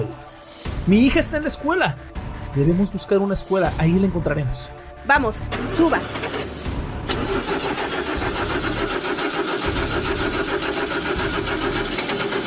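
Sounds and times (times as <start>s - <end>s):
speech: 0.8s - 6.3s
video-game car engine cranking but failing to start: 5.4s - 12.4s.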